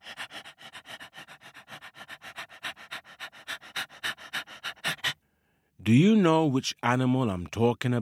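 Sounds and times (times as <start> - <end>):
dingo panting with tongue out: 0.0 - 5.2
speech: 5.9 - 8.0.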